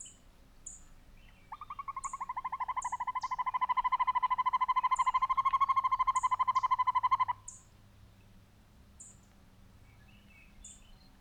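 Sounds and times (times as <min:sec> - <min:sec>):
male northern hawk-owl of the American form giving a rolling trill of hollow hoots: 0:01.5 - 0:07.6.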